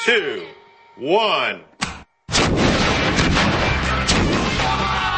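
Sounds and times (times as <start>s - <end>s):
speech: 0.0s - 1.7s
sewer explosion blast with rumbling roar and crackling: 2.3s - 5.0s.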